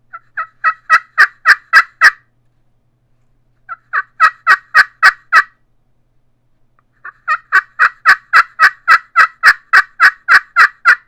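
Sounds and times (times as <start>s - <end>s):
turkey yelping: 0.1s - 2.2s, 3.7s - 5.5s, 7.0s - 11.0s.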